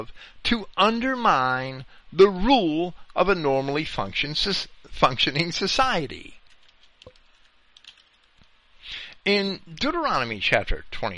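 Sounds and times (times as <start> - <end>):
speech: 0.0 - 6.4, 8.9 - 11.1
faint hiss: 0.0 - 11.1
keystrokes on a keyboard: 6.5 - 8.5.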